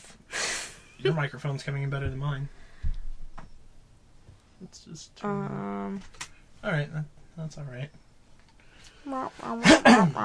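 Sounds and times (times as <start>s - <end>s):
speech: 1.0s - 2.8s, 4.6s - 8.0s, 9.0s - 10.2s
person coughing after taking a cough drop: 9.6s - 10.2s.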